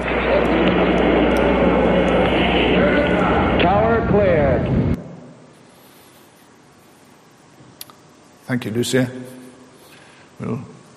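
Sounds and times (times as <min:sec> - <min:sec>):
rocket engines roaring at liftoff of Apollo 11: 0:00.0 - 0:05.0
speech: 0:08.5 - 0:09.4, 0:10.4 - 0:10.7.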